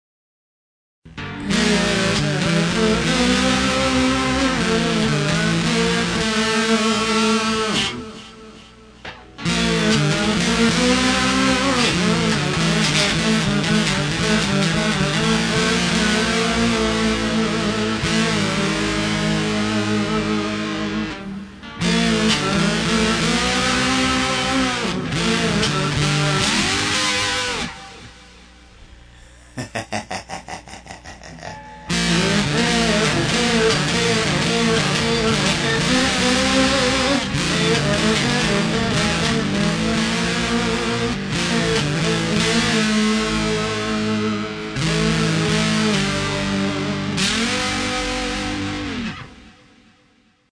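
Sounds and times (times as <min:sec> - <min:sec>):
lap steel guitar: 0:01.1 - 0:29.4, 0:31.2 - 0:49.9
laughter: 0:29.4 - 0:31.8.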